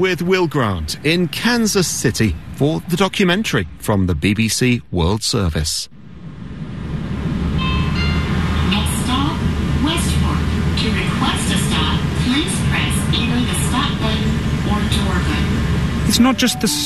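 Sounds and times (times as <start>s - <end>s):
streetcar tram running along Main Street in Kansas City: 0.0s - 4.3s, 5.9s - 16.8s
speech: 0.0s - 6.0s, 16.1s - 16.8s
indistinct voices: 8.7s - 16.8s.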